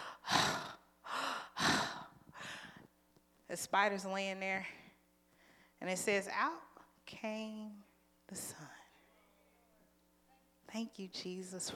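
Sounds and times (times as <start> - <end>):
person breathing hard after nearly drowning: 0.0 - 2.9
speech: 3.5 - 4.8, 5.8 - 8.8, 10.7 - 11.7.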